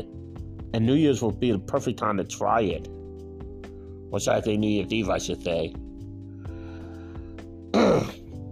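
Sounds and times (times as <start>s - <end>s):
speech: 0.7s - 3.0s, 4.1s - 5.8s
person coughing: 7.7s - 8.3s.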